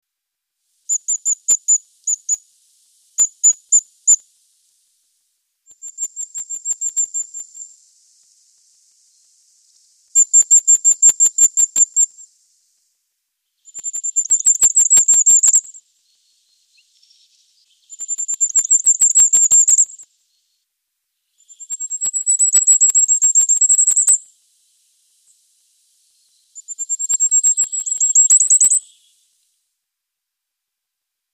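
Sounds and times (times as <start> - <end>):
three-banded wren singing: 0.9 - 2.4, 5.7 - 12.6, 13.6 - 20.6, 21.3 - 24.3, 25.1 - 29.3.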